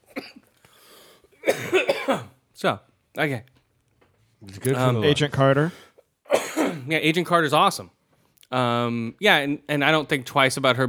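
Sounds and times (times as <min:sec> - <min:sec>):
person coughing harshly: 0:00.1 - 0:00.5, 0:01.4 - 0:02.4, 0:06.3 - 0:06.9
speech: 0:01.8 - 0:03.5, 0:04.4 - 0:05.8, 0:06.9 - 0:10.8.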